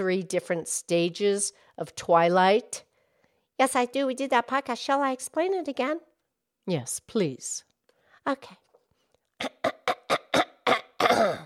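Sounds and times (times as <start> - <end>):
speech: 0.0 - 2.9, 3.6 - 8.6
person clearing throat: 9.4 - 11.4.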